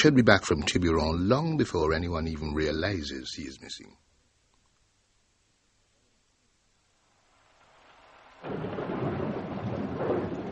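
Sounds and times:
speech: 0.0s - 4.1s
heavy roaring downpour with deep rumble: 7.1s - 10.5s.

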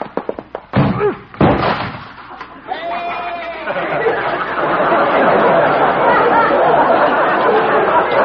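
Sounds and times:
goat crashing against a door with a heavy thud: 0.2s - 2.3s
door slamming shut: 0.8s - 2.3s
crowd laughing loudly: 2.2s - 8.2s.

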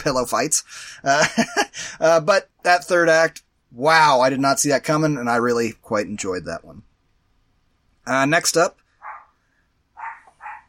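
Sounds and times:
speech: 0.0s - 6.9s, 8.0s - 8.8s
laughter: 1.1s - 1.8s
dog barking: 9.0s - 9.4s, 10.0s - 10.6s.

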